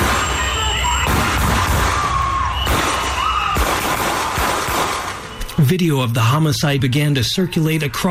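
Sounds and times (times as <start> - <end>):
gunshots: 0.0 - 5.5
speech: 5.7 - 8.0.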